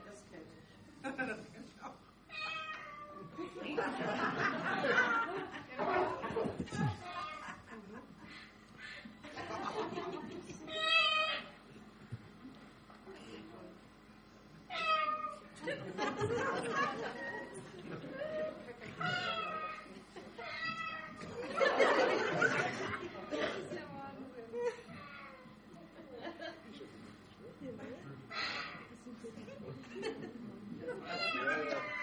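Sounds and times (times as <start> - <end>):
laughter: 1.0 - 1.9, 3.2 - 10.7, 15.6 - 20.6, 21.2 - 25.0, 25.7 - 28.2, 28.9 - 31.9
cat meowing in a played video: 2.3 - 3.2, 14.7 - 15.4, 19.0 - 19.8, 20.4 - 21.2.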